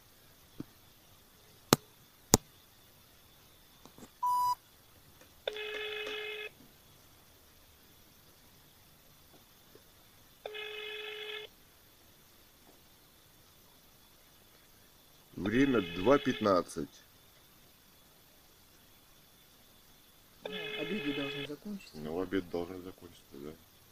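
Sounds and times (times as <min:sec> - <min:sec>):
brief telephone beep: 0:04.2 - 0:04.6
long buzzing telephone ring tones of a call to an emergency-services office: 0:04.2 - 0:04.6, 0:05.5 - 0:06.6, 0:10.4 - 0:11.5, 0:15.5 - 0:16.7, 0:20.4 - 0:21.6
speech: 0:15.5 - 0:17.1, 0:21.8 - 0:23.7.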